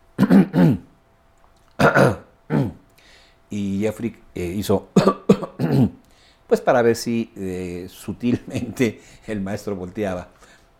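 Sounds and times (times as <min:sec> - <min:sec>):
person clearing throat: 0:00.2 - 0:01.0, 0:01.8 - 0:02.8, 0:05.0 - 0:06.0
speech: 0:00.6 - 0:00.9, 0:03.8 - 0:10.6.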